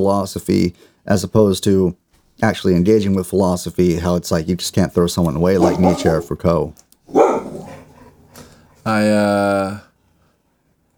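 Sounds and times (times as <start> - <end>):
speech: 0.0 - 7.2, 8.8 - 9.9
blind dog barking: 5.6 - 6.3, 7.1 - 8.2.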